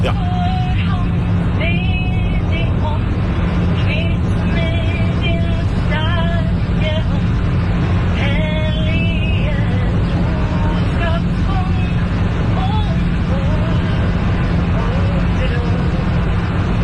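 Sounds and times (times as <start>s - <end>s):
voices murmuring: 0.0s - 0.2s
airplane cabin roar in flight: 0.0s - 16.8s
low hum: 0.0s - 16.8s.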